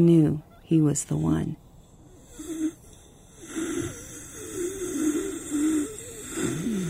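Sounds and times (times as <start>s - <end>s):
speech: 0.0s - 1.6s
shallow gravelly wheezing breaths from a man with a mass in his lungs: 1.7s - 6.8s.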